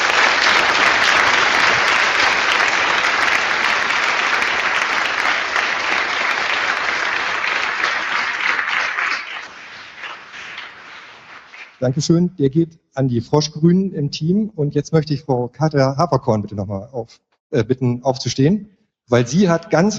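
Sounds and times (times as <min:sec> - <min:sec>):
conference audience applause: 0:00.0 - 0:12.0
speech: 0:11.8 - 0:19.9.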